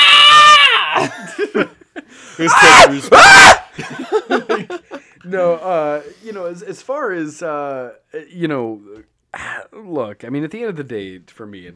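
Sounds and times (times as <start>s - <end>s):
person shrieking in exaggerated agony: 0.0s - 1.1s, 2.4s - 3.7s
laughter: 1.0s - 5.1s
speech: 1.5s - 1.8s, 2.4s - 4.4s, 5.3s - 11.7s.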